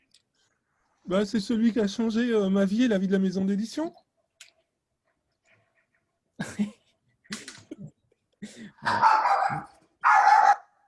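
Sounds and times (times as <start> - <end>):
speech: 1.1 - 4.0
dog barking: 8.8 - 10.8.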